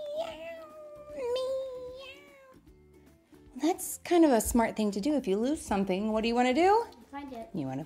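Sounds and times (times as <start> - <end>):
kittens meowing: 0.3 - 2.7
speech: 4.1 - 7.8.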